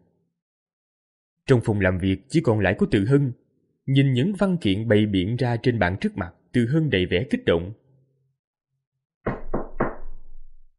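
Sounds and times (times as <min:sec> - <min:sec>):
speech: 0:01.5 - 0:07.8
knocking on an office door: 0:09.3 - 0:10.4.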